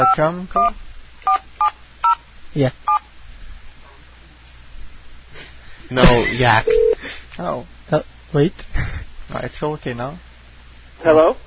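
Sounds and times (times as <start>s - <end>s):
speech: 0.0s - 0.9s, 2.6s - 2.9s, 5.9s - 10.3s, 11.0s - 11.4s
telephone keypad beep: 6.7s - 7.0s.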